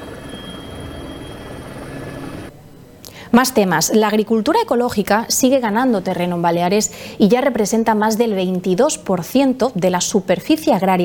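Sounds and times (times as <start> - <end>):
mountain rescue helicopter rotor thumping overhead: 0.0 - 2.5
helicopter engine whining: 0.0 - 2.6
speech: 3.3 - 11.0.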